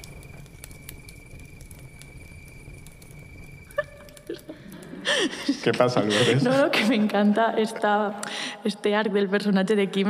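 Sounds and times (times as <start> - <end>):
scattered tiny pops: 0.0 - 4.9
quiet steady crackling: 0.0 - 8.5
faint constant hum: 0.0 - 10.0
laughter: 3.8 - 7.5
speech: 4.3 - 10.0.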